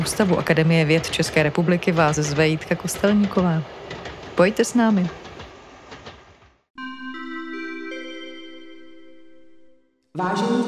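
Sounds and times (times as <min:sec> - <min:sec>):
speech: 0:00.0 - 0:05.3, 0:10.2 - 0:10.6
Eurocity train rolling in at a station platform: 0:00.0 - 0:06.4.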